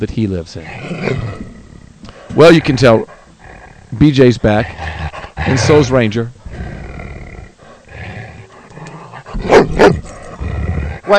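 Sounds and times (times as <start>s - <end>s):
speech: 0.0s - 1.3s, 2.3s - 3.2s, 3.9s - 6.4s
low rumbling noise: 0.0s - 11.1s
faint movement: 0.6s - 11.1s
female dog barking: 9.4s - 10.1s.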